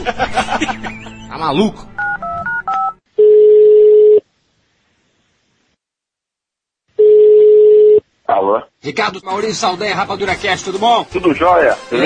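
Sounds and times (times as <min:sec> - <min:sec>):
laughter: 0:00.0 - 0:01.4
speech: 0:00.0 - 0:01.9, 0:08.4 - 0:12.0
telephone keypad tones as a number is dialed: 0:02.0 - 0:04.2
telephone ringing tones: 0:02.0 - 0:04.2, 0:07.0 - 0:08.0.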